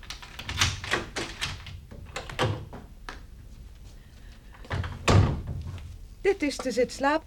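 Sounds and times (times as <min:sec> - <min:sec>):
house door clicks and rattles: 0:00.0 - 0:02.9, 0:04.6 - 0:05.7
speech: 0:06.2 - 0:07.2.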